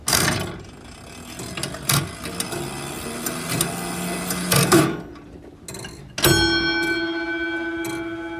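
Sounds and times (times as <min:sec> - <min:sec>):
clockwork gears whirring and clicking inside a clock: 0:00.0 - 0:06.4
ringing sustained metallic tone of clockwork: 0:06.2 - 0:08.3.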